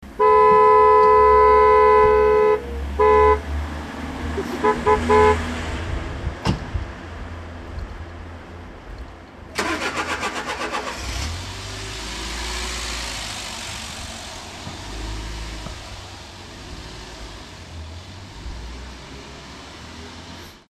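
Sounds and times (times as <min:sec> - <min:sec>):
cars: 0:00.0 - 0:20.6.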